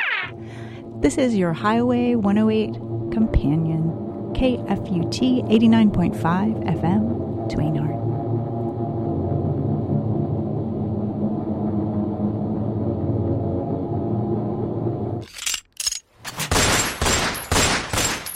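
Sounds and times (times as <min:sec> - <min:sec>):
speech: 0:00.2 - 0:07.9
sustained low droning sound: 0:00.3 - 0:15.6
gunfire bursts from people shooting: 0:16.4 - 0:18.3.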